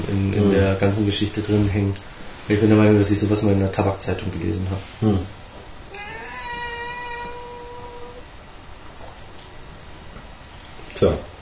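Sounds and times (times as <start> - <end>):
speech: 0.0 - 5.4, 11.0 - 11.3
quiet noise: 0.0 - 11.4
cat meowing with drawn-out wail: 5.9 - 8.3.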